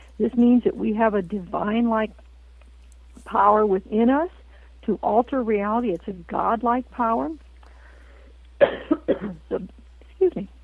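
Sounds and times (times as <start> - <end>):
steady low hum: 0.0 - 10.6
speech: 0.2 - 2.3, 3.2 - 7.4, 8.6 - 10.6
person coughing from a catch in the throat: 8.6 - 9.7.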